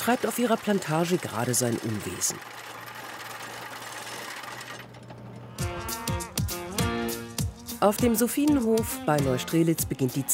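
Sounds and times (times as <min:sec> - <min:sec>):
speech: 0:00.0 - 0:02.8, 0:07.8 - 0:10.3
cattle mooing on lush meadows: 0:05.5 - 0:07.2.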